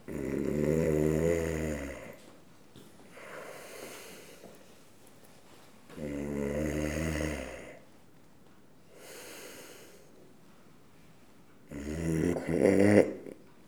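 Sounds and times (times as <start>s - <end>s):
person snoring: 0.1s - 2.2s, 6.0s - 7.8s, 11.7s - 13.3s.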